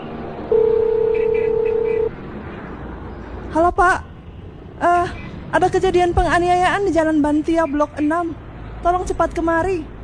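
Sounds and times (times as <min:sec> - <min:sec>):
telephone tone: 0:00.5 - 0:02.1
speech: 0:03.6 - 0:04.1, 0:05.5 - 0:09.9.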